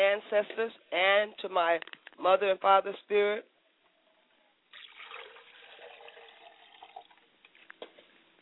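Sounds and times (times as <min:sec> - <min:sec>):
speech: 0:00.2 - 0:03.5
water running from a tap while washing hands: 0:04.7 - 0:07.3.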